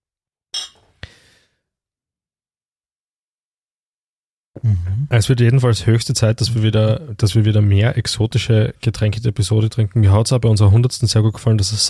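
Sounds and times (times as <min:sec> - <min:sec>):
glasses clinking together in a toast: 0:00.5 - 0:00.9
speech: 0:04.6 - 0:11.8.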